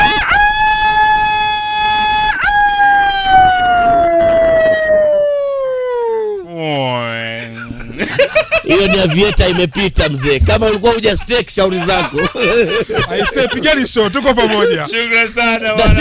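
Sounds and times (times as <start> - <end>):
laughter: 0.0 - 1.0, 7.3 - 15.9
rooster crowing: 0.0 - 6.2
speech: 8.7 - 15.9.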